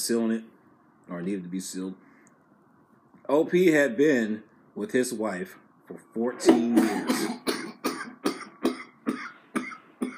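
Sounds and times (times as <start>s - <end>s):
speech: 0.0s - 2.1s, 3.3s - 7.3s
harsh chesty coughs: 6.4s - 10.1s.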